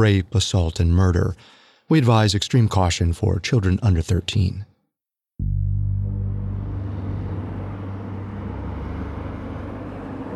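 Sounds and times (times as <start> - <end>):
speech: 0.0 - 4.7, 5.4 - 5.7
deep engine rumble of freeway traffic: 5.4 - 10.3.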